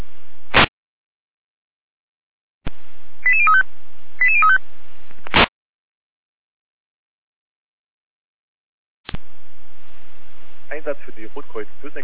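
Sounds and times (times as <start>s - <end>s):
stepped electronic alerting tones over fire brigade dispatch radio: 3.2s - 3.6s, 4.2s - 4.6s
dispatch radio squelch static crackles: 5.2s - 5.5s, 10.7s - 12.0s
speech: 10.8s - 12.0s.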